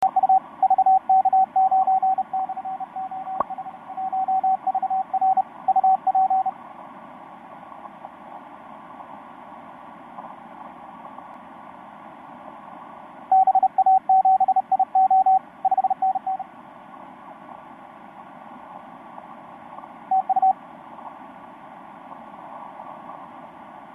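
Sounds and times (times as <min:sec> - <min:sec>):
CW radio signal on the 10m band: 0:00.0 - 0:06.5, 0:13.3 - 0:16.5, 0:20.1 - 0:20.6.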